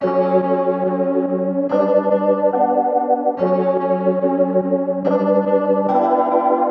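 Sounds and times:
melody loop at 143 BPM in F# minor: 0:00.0 - 0:06.6.

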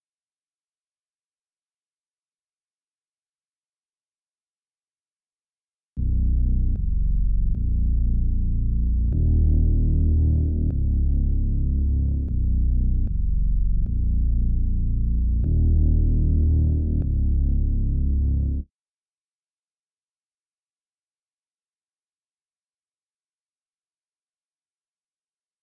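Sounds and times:
152 BPM D# minor bass loop stems: 0:06.0 - 0:18.6.

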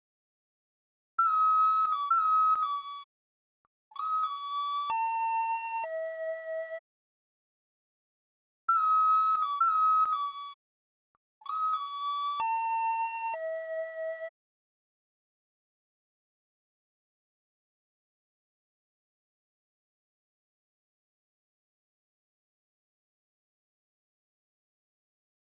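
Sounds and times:
ocarina melodies in C# minor at 128 BPM: 0:01.2 - 0:03.1, 0:04.0 - 0:06.8, 0:08.7 - 0:10.6, 0:11.4 - 0:14.3.

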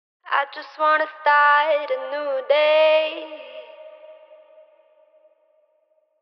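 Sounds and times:
wet vocal phrase in C minor: 0:00.3 - 0:04.9.

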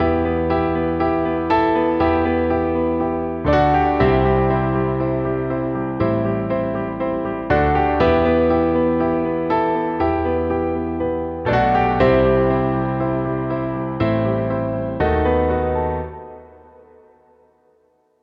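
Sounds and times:
broken piano lead in E minor: 0:00.0 - 0:18.2.

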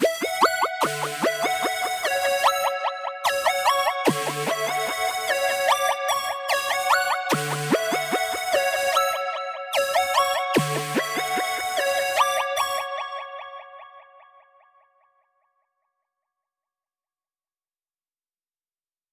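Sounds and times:
F sharp minor lead melody loop stem: 0:00.0 - 0:13.2.

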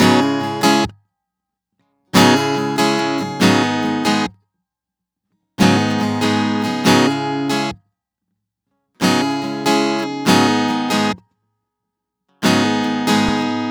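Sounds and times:
guitar loop at 140 BPM in C sharp minor: 0:00.0 - 0:00.9, 0:02.2 - 0:04.3, 0:05.6 - 0:07.7, 0:09.0 - 0:11.2, 0:12.4 - 0:13.6.

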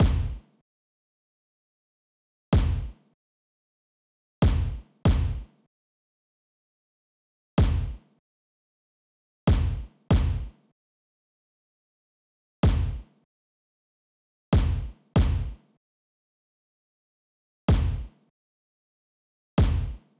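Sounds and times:
space kick drum loop: 0:00.0 - 0:00.4, 0:02.6 - 0:02.9, 0:04.4 - 0:05.4, 0:07.6 - 0:08.0, 0:09.5 - 0:10.5, 0:12.6 - 0:13.0, 0:14.6 - 0:15.6, 0:17.7 - 0:18.1, 0:19.6 - 0:20.0.

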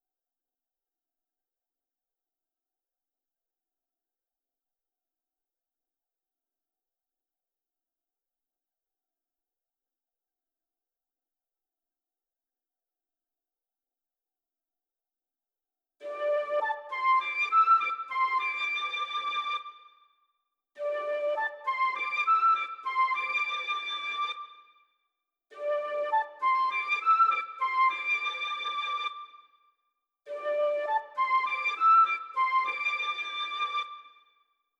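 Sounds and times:
flute in D minor: 0:16.0 - 0:20.0, 0:20.8 - 0:24.8, 0:25.5 - 0:29.5, 0:30.3 - 0:34.3.

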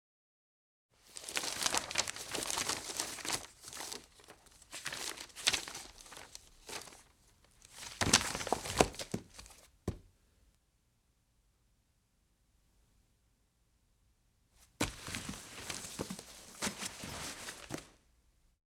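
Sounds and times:
book pages turning quickly: 0:01.1 - 0:07.1, 0:07.7 - 0:09.6, 0:14.8 - 0:17.9.

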